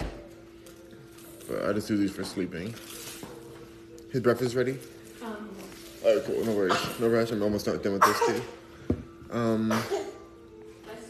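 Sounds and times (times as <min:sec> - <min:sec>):
speech: 0:01.5 - 0:03.1, 0:04.1 - 0:08.6, 0:09.3 - 0:10.0
man sneezing: 0:08.0 - 0:08.6, 0:09.5 - 0:10.2.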